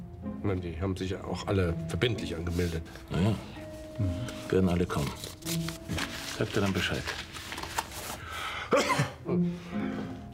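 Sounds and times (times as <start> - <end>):
speech: 0.4 - 7.3, 8.7 - 9.8
person sneezing: 8.7 - 9.3.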